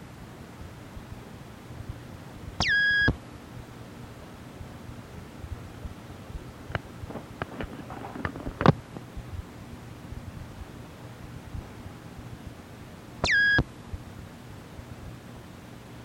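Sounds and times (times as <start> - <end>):
single sustained electronic beep: 2.6 - 3.1, 13.2 - 13.6.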